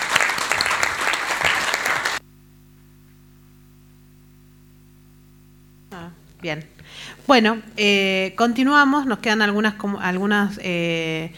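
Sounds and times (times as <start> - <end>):
audience clapping: 0.0 - 2.2
speech: 6.4 - 11.3.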